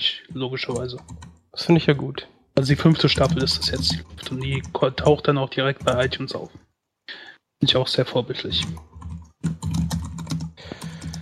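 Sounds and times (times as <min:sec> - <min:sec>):
rapid typing on a computer keyboard: 0:00.0 - 0:01.5, 0:02.6 - 0:06.6, 0:08.5 - 0:11.1
speech: 0:00.4 - 0:06.6, 0:07.6 - 0:09.9.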